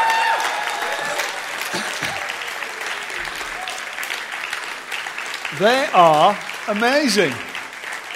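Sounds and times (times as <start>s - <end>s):
crowd cheering and whooping: 0.0s - 4.0s
audience applause: 0.0s - 8.1s
speech: 5.6s - 7.5s.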